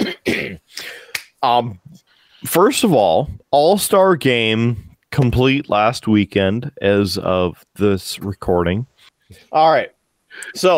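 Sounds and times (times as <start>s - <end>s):
throat clearing: 0.0s - 0.6s
rough coughs: 0.0s - 1.2s
speech: 1.4s - 10.7s.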